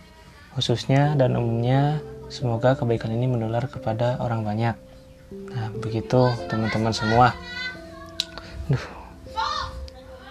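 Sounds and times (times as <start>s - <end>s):
speech: 0.6s - 7.6s, 8.7s - 9.0s
child's voice outside: 5.6s - 10.2s.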